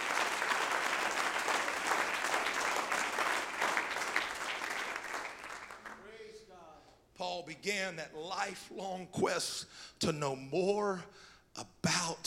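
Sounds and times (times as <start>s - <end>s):
crowd of people clapping their hands: 0.0s - 6.2s
speech: 7.4s - 12.2s.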